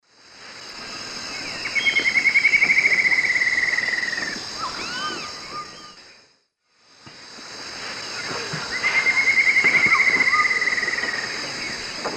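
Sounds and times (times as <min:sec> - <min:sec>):
Dendroplex picus song in the Eastern Lowlands of South America: 0:01.2 - 0:06.3, 0:08.1 - 0:12.1.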